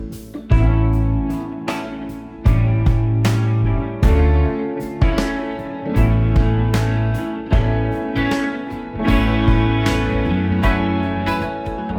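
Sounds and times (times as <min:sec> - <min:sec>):
funk groove guitar loop in A minor: 0:00.0 - 0:11.9.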